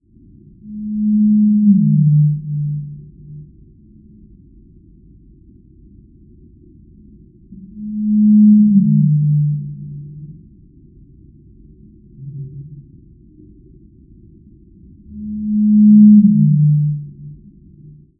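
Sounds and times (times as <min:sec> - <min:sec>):
blue whale Z call: 0:00.4 - 0:04.2, 0:07.4 - 0:10.9, 0:11.7 - 0:13.8, 0:15.0 - 0:18.1.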